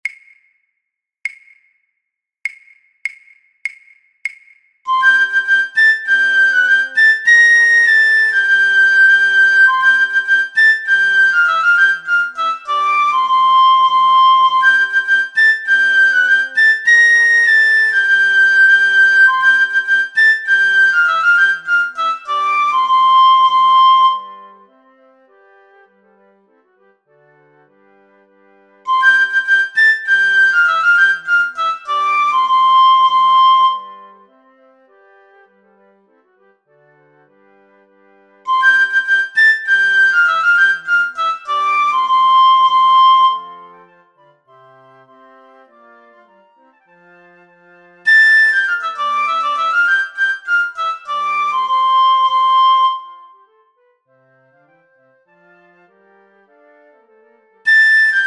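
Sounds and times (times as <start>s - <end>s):
piccolo: 4.9s - 25.0s, 28.9s - 34.4s, 38.5s - 44.5s, 48.0s - 54.0s, 57.7s - 58.2s.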